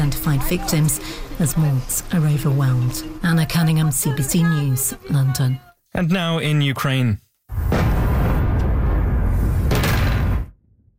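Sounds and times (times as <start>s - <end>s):
continuous low rumble: 0.0s - 5.6s
speech: 0.0s - 7.6s
heavy explosions in the night sky over a city: 7.5s - 10.9s.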